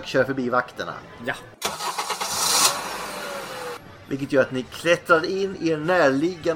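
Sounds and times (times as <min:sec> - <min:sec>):
speech: 0:00.0 - 0:01.6, 0:04.1 - 0:06.5
car engine cranking and starting: 0:01.6 - 0:03.8.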